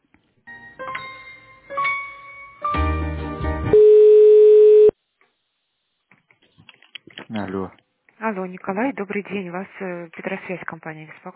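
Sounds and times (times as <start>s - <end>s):
telephone line tones during office call transfer: 3.7s - 5.0s
speech: 7.6s - 11.3s.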